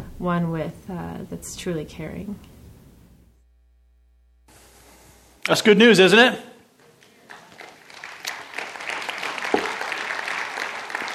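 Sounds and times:
speech: 0.2 - 2.5, 5.5 - 6.5
roomful of people applauding: 6.8 - 11.1.

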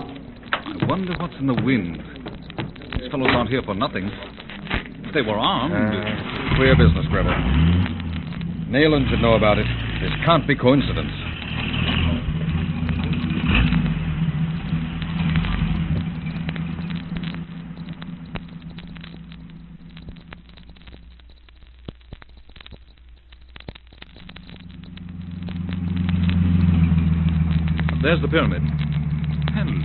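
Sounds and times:
car engine running: 0.0 - 21.2, 24.1 - 29.8
speech: 0.9 - 2.2, 3.0 - 4.3, 5.2 - 7.8, 8.7 - 11.2, 28.1 - 28.8.

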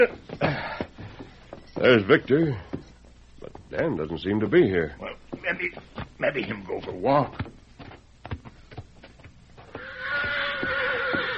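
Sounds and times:
speech: 0.0 - 0.2, 1.8 - 2.7, 3.8 - 7.4
horse neighing after running hard: 9.7 - 11.3.

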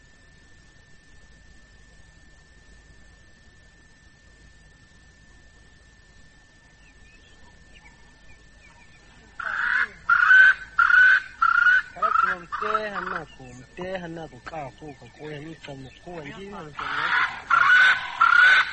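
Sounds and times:
loud rapid bird calls: 6.7 - 18.7
person speaking: 11.9 - 17.7.

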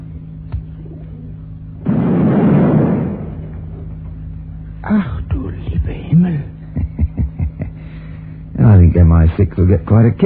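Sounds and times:
low hum: 0.0 - 10.2
bomb set off by a transmitter exploding: 1.8 - 4.0
laughter: 6.6 - 8.1
speech: 9.2 - 10.2.

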